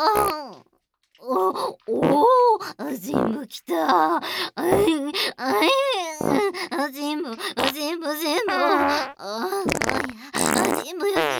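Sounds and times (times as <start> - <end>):
speech: 0.0 - 0.4, 1.3 - 7.6
loud buzzy sputtering farts: 0.0 - 0.6, 6.2 - 6.5, 7.6 - 7.8, 8.5 - 11.3.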